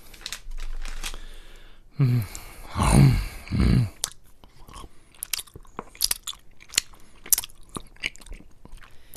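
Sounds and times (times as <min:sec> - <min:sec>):
speech: 0:02.0 - 0:03.9
loud crunching and sticky chomping of candy: 0:03.8 - 0:09.1.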